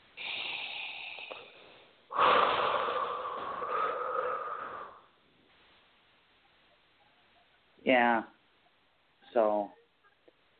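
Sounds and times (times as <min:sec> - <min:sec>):
slow deep breath: 0:00.2 - 0:05.2
speech: 0:07.9 - 0:08.3.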